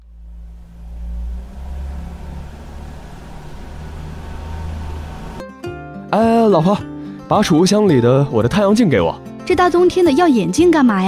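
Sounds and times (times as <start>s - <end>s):
car engine starting and idling to warm up on a cold winter day: 0.0s - 5.4s
speech: 6.1s - 11.0s.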